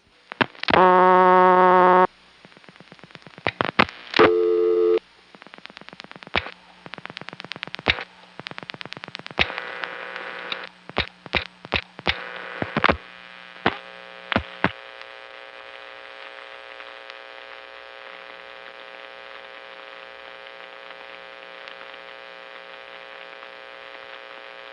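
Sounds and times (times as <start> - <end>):
faint hum: 0.0 - 24.7
telephone busy tone on a call between Annapolis exchanges: 4.2 - 5.0.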